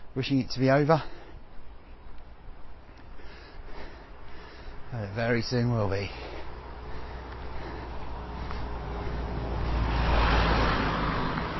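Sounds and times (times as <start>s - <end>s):
steady road traffic noise: 0.0s - 11.5s
speech: 0.2s - 1.2s, 4.9s - 6.3s
vehicle approaching: 5.4s - 11.5s.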